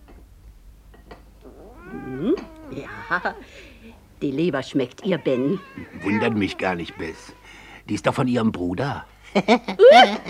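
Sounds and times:
fat cat meowing while being fed gristly scraps: 0:01.4 - 0:03.7, 0:04.9 - 0:07.6
speech: 0:03.1 - 0:10.2.

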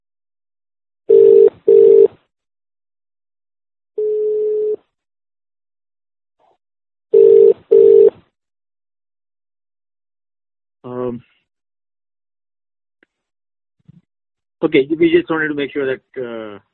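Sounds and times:
telephone ring tone on a conference call line: 0:01.1 - 0:02.1, 0:04.0 - 0:04.8, 0:07.2 - 0:08.1
speech: 0:11.1 - 0:11.3, 0:14.6 - 0:16.7.

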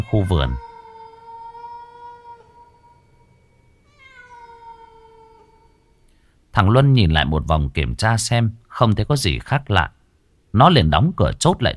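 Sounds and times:
cat meowing: 0:00.0 - 0:03.0, 0:03.9 - 0:06.0
speech: 0:00.1 - 0:00.7, 0:06.6 - 0:11.7.

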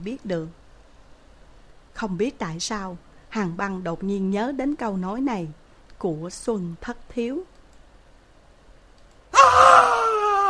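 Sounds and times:
speech: 0:00.0 - 0:00.6, 0:02.0 - 0:07.5
man screaming: 0:09.3 - 0:10.4.

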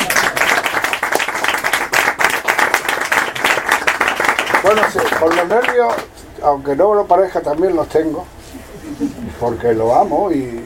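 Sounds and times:
audience applause at an event in Granada: 0:00.0 - 0:06.1
speech: 0:04.7 - 0:08.3, 0:08.9 - 0:10.6.

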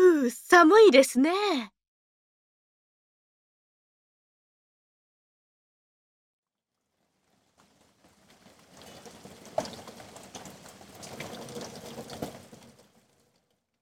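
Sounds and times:
speech: 0:00.3 - 0:01.8
heavy rain: 0:07.2 - 0:13.2.

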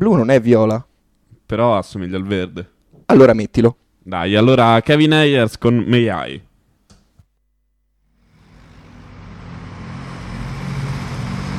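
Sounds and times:
speech: 0:00.0 - 0:00.9, 0:01.5 - 0:06.5
engine rumble of a truck passing outside: 0:08.2 - 0:11.5.

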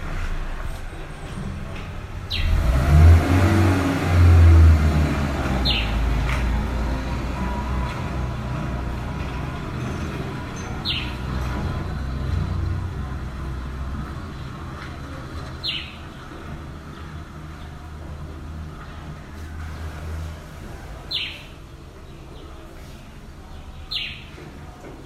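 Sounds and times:
steady low rumble of car traffic in Yaoundé, Cameroon: 0:00.0 - 0:25.0
grey-headed sparrow chirps in Yaoundé, Cameroon: 0:02.3 - 0:02.6, 0:05.6 - 0:06.1, 0:10.6 - 0:11.3, 0:15.5 - 0:16.3, 0:21.1 - 0:22.6, 0:23.5 - 0:24.4.

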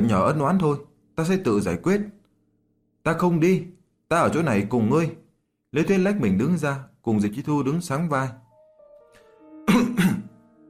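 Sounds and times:
speech: 0:00.0 - 0:02.2, 0:03.0 - 0:08.4
two men coughing: 0:09.7 - 0:10.4.

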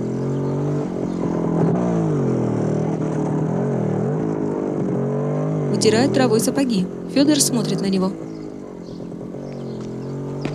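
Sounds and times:
motorcycle with a sidecar running its engine: 0:00.0 - 0:10.5
speech: 0:05.8 - 0:08.3.

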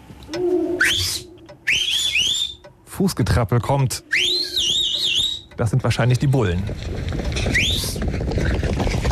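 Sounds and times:
shrill whistles blown on a street: 0:00.5 - 0:02.7, 0:04.0 - 0:05.6, 0:07.5 - 0:08.0
speech: 0:03.0 - 0:04.3, 0:05.6 - 0:09.0.

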